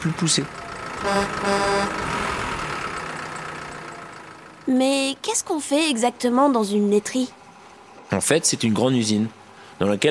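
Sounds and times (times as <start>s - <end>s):
speech: 0.0s - 2.1s, 4.7s - 7.4s, 8.1s - 10.0s
milk tanker truck heavy engine idling: 0.0s - 10.0s
short horn-like tonal blasts: 0.9s - 2.4s.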